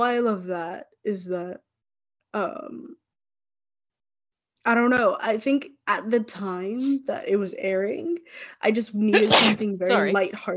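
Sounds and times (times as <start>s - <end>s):
speech: 0.0s - 1.7s, 2.3s - 3.0s, 4.6s - 10.5s
sneeze: 9.2s - 9.7s.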